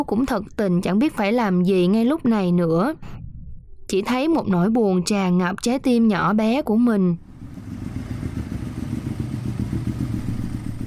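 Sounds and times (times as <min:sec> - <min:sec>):
speech: 0:00.0 - 0:03.2, 0:03.9 - 0:07.2
motorcycle engine puttering as the bike rides into a temple yard: 0:07.4 - 0:10.8.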